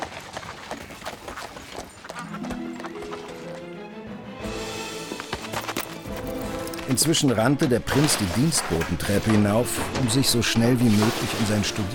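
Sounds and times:
hoofbeats of a horse pulling an empty carriage: 0:00.0 - 0:03.9, 0:04.5 - 0:10.1
speech: 0:06.9 - 0:11.9.

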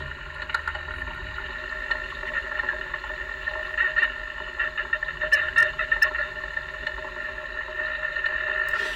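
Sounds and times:
underwater crackling of feeding carp via hydrophone: 0:00.0 - 0:08.9.

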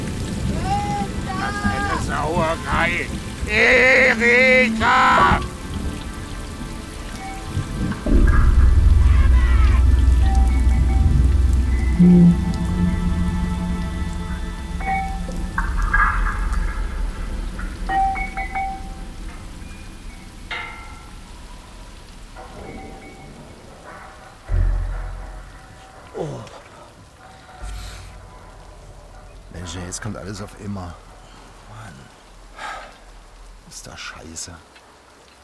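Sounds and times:
rain running into a well in a courtyard: 0:00.0 - 0:35.4
speech: 0:02.3 - 0:05.5, 0:30.3 - 0:31.1, 0:34.2 - 0:34.8
heavier thuds: 0:07.3 - 0:19.9, 0:20.6 - 0:29.6.

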